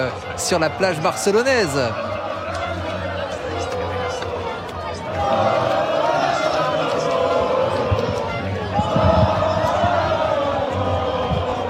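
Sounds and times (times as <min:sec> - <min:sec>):
speech: 0:00.0 - 0:02.1
large crowd cheering and shouting in celebration: 0:00.0 - 0:11.6.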